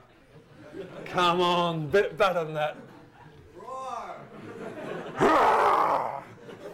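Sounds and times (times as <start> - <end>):
laughter: 0.4 - 1.8, 2.4 - 6.7
speech: 0.8 - 2.8
person imitating a lion's roar: 5.2 - 6.3.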